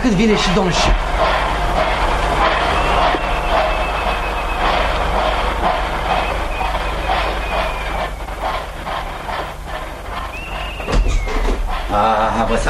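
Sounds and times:
speech: 0.0s - 1.3s, 11.9s - 12.6s
train pulling out of station rumbling and clattering: 0.0s - 12.6s
shrill trilling station whistle: 2.4s - 8.8s, 10.1s - 11.6s.

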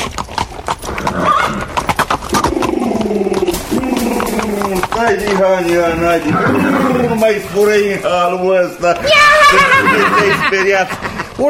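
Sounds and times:
horse hooves clip-clopping: 0.0s - 11.4s
horse neighing: 0.8s - 7.8s, 8.9s - 10.8s
speech: 5.1s - 11.4s
laughter: 9.2s - 11.4s.

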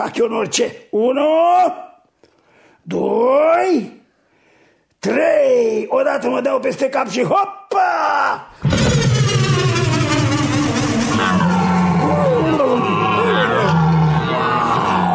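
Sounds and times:
speech: 0.0s - 1.9s, 2.9s - 4.0s, 5.0s - 8.8s
lion roaring: 8.6s - 15.1s.

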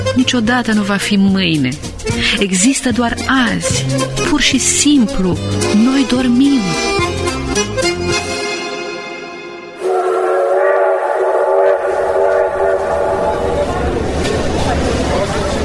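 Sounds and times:
speech: 0.2s - 8.2s
train whistle: 9.8s - 14.6s
tonal squeals of a passing train: 9.8s - 14.7s
train roaring and clattering past: 9.8s - 15.6s.

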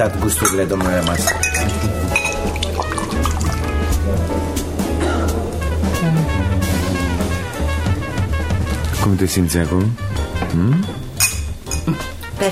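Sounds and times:
speech: 0.0s - 1.9s, 9.0s - 11.0s, 11.9s - 12.5s
champagne pouring from a bottle into glasses at a restaurant table: 0.0s - 4.0s
busy tonal background: 0.0s - 12.5s.

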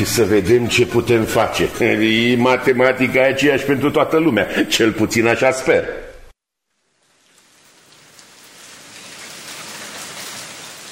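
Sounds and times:
speech: 0.0s - 6.0s
steady rain falling: 6.7s - 10.9s.

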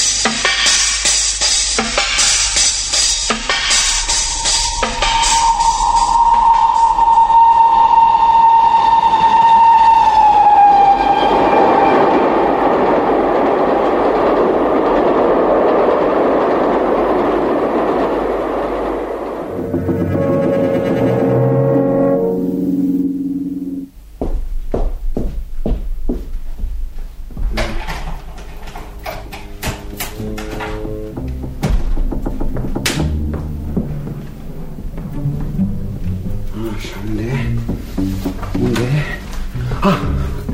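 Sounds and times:
train wheels rumbling and clattering on rails: 0.0s - 22.1s, 24.1s - 40.5s
train whistle: 3.7s - 12.7s, 19.5s - 23.9s.

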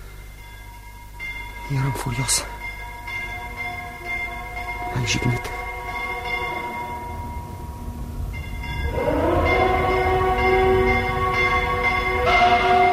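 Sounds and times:
bells ringing: 0.0s - 12.9s
speech: 1.7s - 2.6s, 5.0s - 5.6s
mournful siren wailing: 2.9s - 7.8s, 8.6s - 12.9s.

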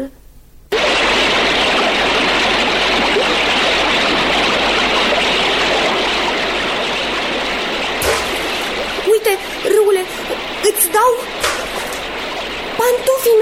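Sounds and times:
river water splashing around a drifting boat that has come loose: 0.8s - 13.1s
person speaking: 9.0s - 11.3s.

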